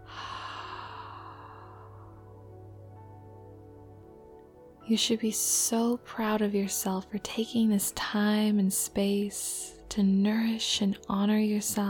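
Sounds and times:
slow breath during a guided relaxation exercise: 0.0 - 2.7
speech: 4.9 - 11.8.

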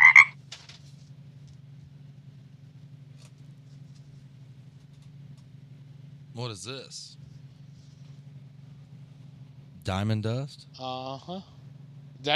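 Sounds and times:
frog croaking: 0.0 - 0.4
low steady engine-like rumble: 0.0 - 12.3
speech: 6.4 - 7.2, 9.8 - 11.5.

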